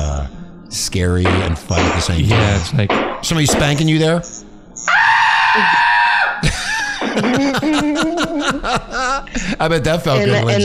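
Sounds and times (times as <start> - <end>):
speech: 0.7 - 5.8, 6.4 - 10.6
loud human scream: 4.9 - 6.4
laughter: 6.4 - 10.6.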